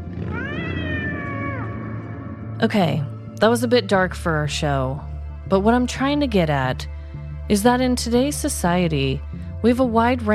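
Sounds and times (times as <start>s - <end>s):
cat meowing: 0.2s - 2.1s
speech: 2.6s - 6.9s, 7.5s - 10.3s.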